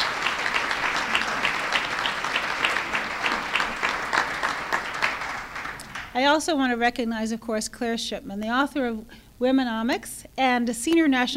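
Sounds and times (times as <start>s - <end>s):
room full of people applauding: 0.0s - 6.2s
speech: 6.2s - 11.3s.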